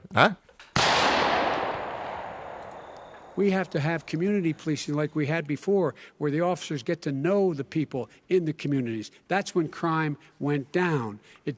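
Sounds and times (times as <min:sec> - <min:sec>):
speech: 0:00.2 - 0:00.4, 0:03.4 - 0:11.5
gunshot: 0:00.8 - 0:04.2.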